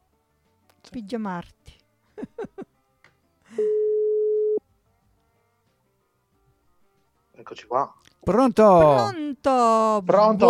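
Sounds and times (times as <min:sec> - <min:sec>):
speech: 0:00.9 - 0:02.4, 0:03.5 - 0:03.8, 0:07.4 - 0:10.4
laughter: 0:02.2 - 0:02.7
telephone ringing tone after pressing the call button: 0:03.6 - 0:04.6.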